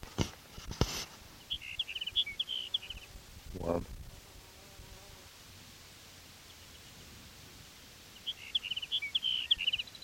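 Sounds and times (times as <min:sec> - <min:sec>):
sage sparrow song: 0:01.4 - 0:03.2, 0:06.4 - 0:07.1, 0:08.0 - 0:10.0.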